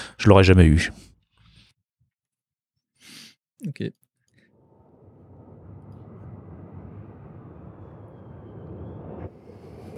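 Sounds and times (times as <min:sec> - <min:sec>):
speech: 0:00.2 - 0:01.1, 0:03.6 - 0:04.0
faint high whine of four-engine jet airliner: 0:04.5 - 0:09.9
four-engine jet airliner roaring: 0:04.6 - 0:09.9.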